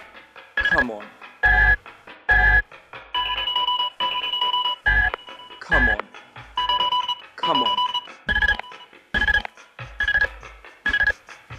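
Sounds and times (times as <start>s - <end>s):
person talking impatiently: 0.7s - 1.1s, 5.6s - 6.1s, 7.4s - 7.8s
speech: 0.7s - 1.2s
telephone ringing in short electronic bursts: 1.5s - 6.0s, 6.6s - 11.2s.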